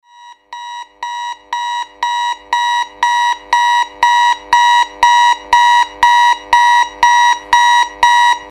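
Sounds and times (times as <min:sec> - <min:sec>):
clock alarm: 0:00.0 - 0:08.4.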